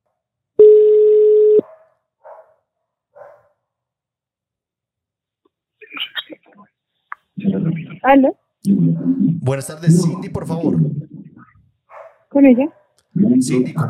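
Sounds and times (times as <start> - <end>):
short quieter telephone beeps: 0.6 - 1.6
telephone tone while a call is being placed: 0.6 - 1.6
speech: 7.7 - 11.0, 12.4 - 13.8.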